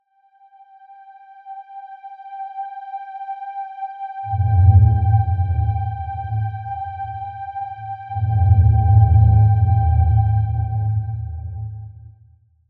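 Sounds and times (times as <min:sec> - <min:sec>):
stress suspense music: 0:04.3 - 0:12.0.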